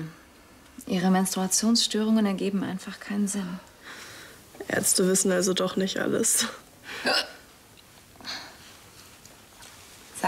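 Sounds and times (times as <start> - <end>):
speech: 0.9 - 3.7, 4.6 - 7.4
hiccups: 7.0 - 7.4.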